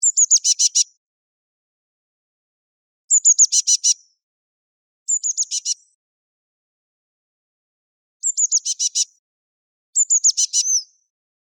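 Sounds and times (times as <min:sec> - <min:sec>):
blue tit: 0:00.0 - 0:01.0, 0:03.1 - 0:04.1, 0:05.1 - 0:06.0, 0:08.2 - 0:09.2, 0:10.0 - 0:11.1.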